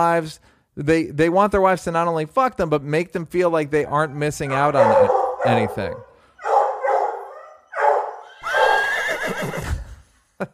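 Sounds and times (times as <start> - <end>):
speech: 0.0 - 6.1
dog barking loudly with strained yelping and howl-like barks: 3.9 - 8.8.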